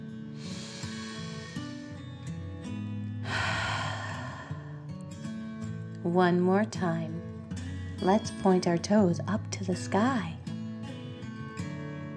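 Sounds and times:
gentle sustained music: 0:00.0 - 0:12.1
person breathing deeply during a children's bedtime relaxation exercise: 0:00.4 - 0:02.1, 0:03.2 - 0:04.9
speech: 0:06.0 - 0:07.2, 0:08.0 - 0:10.4.

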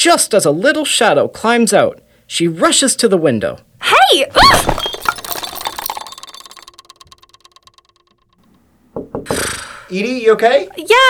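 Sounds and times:
speech: 0:00.0 - 0:04.9, 0:09.9 - 0:11.0
bathroom scale tripped over and clattering on the bathroom floor: 0:04.4 - 0:09.6.

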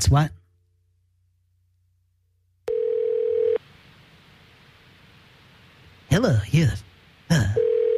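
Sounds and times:
speech: 0:00.0 - 0:00.4, 0:06.2 - 0:07.6
steady telephone tone as a call is dialed: 0:02.7 - 0:03.6, 0:07.6 - 0:07.9
faint hiss: 0:02.7 - 0:07.9.

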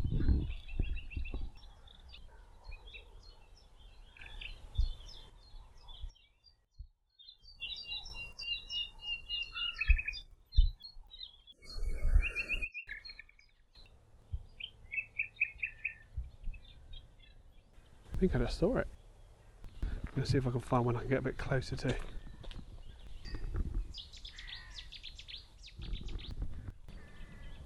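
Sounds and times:
nightingale singing: 0:00.0 - 0:21.2, 0:21.8 - 0:27.6
speech: 0:18.2 - 0:19.0, 0:20.2 - 0:22.2.

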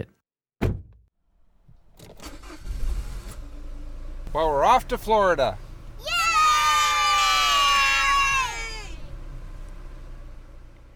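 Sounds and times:
sharp thump of a vehicle door shutting: 0:00.6 - 0:01.0
packed family van engine cranking and rumbling as it pulls away: 0:01.3 - 0:10.9
speech: 0:04.4 - 0:05.6.

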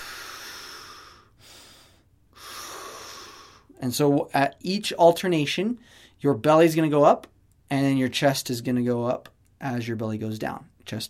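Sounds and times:
slow deep breathing in and out: 0:00.0 - 0:03.8, 0:05.8 - 0:06.2
speech: 0:03.8 - 0:11.0.

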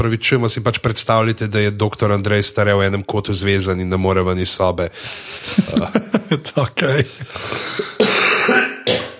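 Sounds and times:
speech: 0:00.0 - 0:09.0
laughter: 0:05.1 - 0:08.0
harsh raspy coughs: 0:07.8 - 0:09.1.

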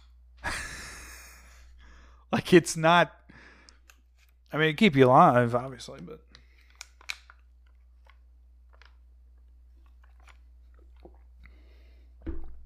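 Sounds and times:
speech: 0:02.3 - 0:03.2, 0:04.5 - 0:06.3
person chewing dry, cardboard-like food: 0:06.4 - 0:12.1.

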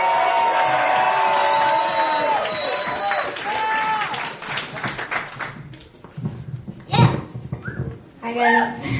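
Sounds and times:
audience cheering, whooping and clapping at an open-mic event: 0:00.0 - 0:05.6
speech: 0:08.4 - 0:08.9.

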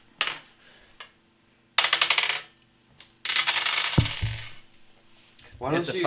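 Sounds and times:
six-sided dice clattering onto a hard surface: 0:00.2 - 0:01.1, 0:01.8 - 0:02.6, 0:03.3 - 0:04.6
speech: 0:05.6 - 0:06.0.

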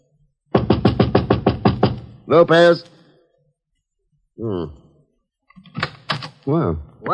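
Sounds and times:
loud heavy knocks on a door: 0:00.5 - 0:02.2
speech: 0:02.3 - 0:02.9, 0:04.4 - 0:04.8, 0:05.7 - 0:07.1.

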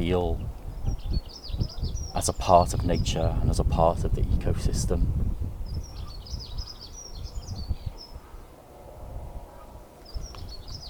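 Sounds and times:
speech: 0:00.0 - 0:00.5, 0:01.1 - 0:05.3
bird singing outdoors: 0:00.0 - 0:03.6, 0:05.6 - 0:08.6, 0:09.4 - 0:10.8
strong gusty Scottish wind: 0:00.0 - 0:10.8.

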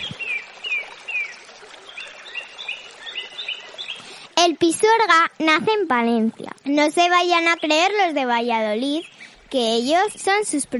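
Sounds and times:
birds singing outdoors: 0:00.0 - 0:04.2, 0:07.4 - 0:08.2, 0:08.8 - 0:09.4
speech: 0:04.4 - 0:10.7.

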